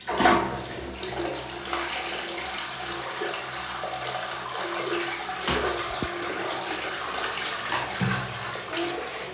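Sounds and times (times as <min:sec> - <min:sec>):
toilet flushing: 0:00.0 - 0:09.3.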